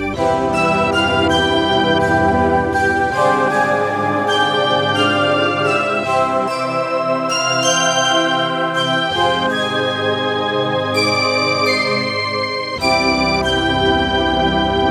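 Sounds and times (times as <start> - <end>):
harp and flute stack on a digital synthesizer: 0.1 - 14.9.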